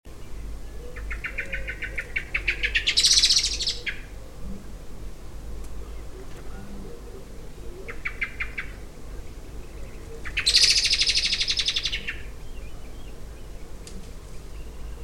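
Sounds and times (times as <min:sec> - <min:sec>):
low steady hum: 0:00.1 - 0:15.0
common blackbird Turdus merula giving rattling chatter calls: 0:01.0 - 0:04.0, 0:10.2 - 0:12.2.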